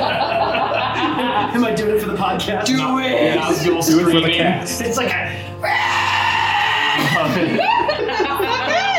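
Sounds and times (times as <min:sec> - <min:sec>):
laughter-like bursts: 0:00.0 - 0:01.7, 0:07.2 - 0:08.9
speech: 0:01.4 - 0:05.5, 0:07.2 - 0:08.5
person shrieking in imitation of a goblin: 0:05.6 - 0:07.8.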